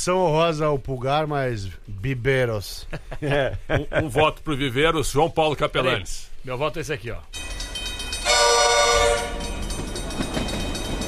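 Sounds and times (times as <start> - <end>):
speech: 0.0 - 7.6
laughter: 2.8 - 4.5
rumbling rail clatter of a passing train: 7.2 - 11.0
train horn blaring: 8.2 - 9.8.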